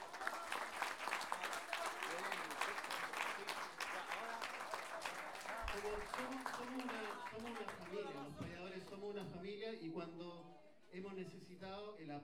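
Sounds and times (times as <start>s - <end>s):
audience at a folk improvised-verse singing tournament applauding: 0.0s - 8.4s
murmur of voices: 0.0s - 11.8s
speech: 5.8s - 12.2s.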